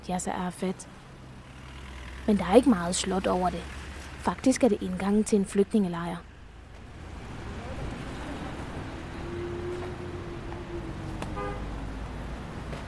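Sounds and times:
speech: 0.0s - 1.1s, 2.3s - 6.3s
constant traffic rumble: 0.0s - 12.8s
cars driving slowly through a narrow gate: 0.6s - 12.8s
short car horn toot: 11.4s - 11.7s.

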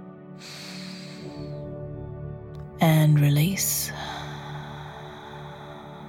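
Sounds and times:
deep breath in: 0.4s - 1.7s, 3.9s - 6.0s
speech: 2.8s - 4.1s.

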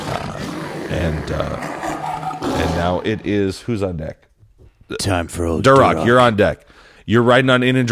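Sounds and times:
person imitating a big creature's roar: 0.0s - 3.3s
speech: 0.9s - 1.8s, 2.6s - 4.3s, 4.9s - 7.9s.

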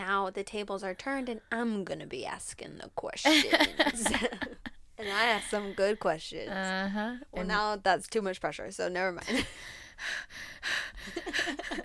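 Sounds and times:
speech: 0.3s - 11.8s
laughter: 3.3s - 4.7s, 11.0s - 11.8s
heavy breathy inhales and exhales into microphone: 9.6s - 11.6s.

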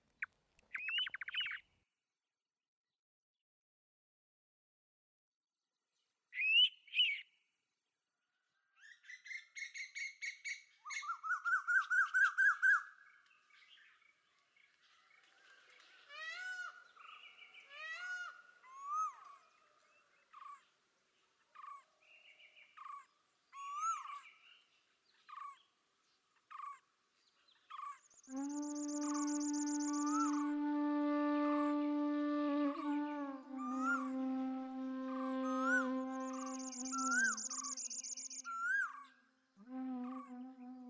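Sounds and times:
other birdsong: 0.1s - 1.7s, 8.8s - 30.8s, 32.8s - 39.2s
pitta calling at dawn with whistled bursts and repeated bright notes: 28.2s - 38.6s, 39.6s - 40.8s.

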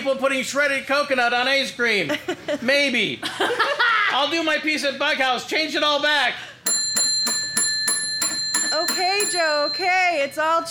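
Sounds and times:
speech: 0.0s - 6.5s, 8.9s - 10.6s
laughter: 2.1s - 4.3s
bell ringing: 6.6s - 10.6s.

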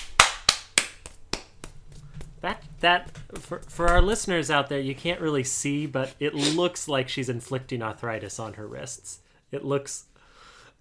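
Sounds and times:
sharp hand claps, seal-style: 0.0s - 1.9s
speech: 2.4s - 10.1s.

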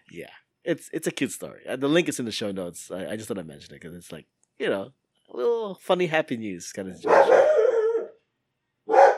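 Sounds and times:
speech: 0.1s - 7.6s
dog barking: 7.0s - 8.2s, 8.9s - 9.1s.

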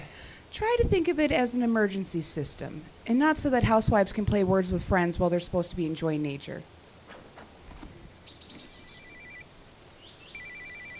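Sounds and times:
faint outdoor noise: 0.0s - 10.9s
speech: 0.6s - 6.8s
satellite phone ringing with a warbling electronic trill: 8.7s - 9.5s, 10.3s - 10.9s.

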